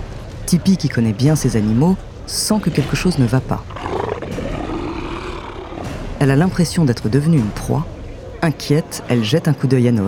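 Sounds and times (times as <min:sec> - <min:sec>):
speech: 0:00.5 - 0:03.9, 0:06.2 - 0:10.0
lion roaring: 0:03.7 - 0:06.3.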